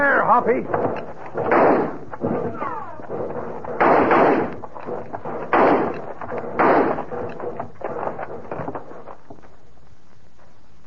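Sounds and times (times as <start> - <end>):
people talking: 0.0 - 0.7, 2.5 - 3.1
gunfire volley in a radio western: 0.7 - 9.0.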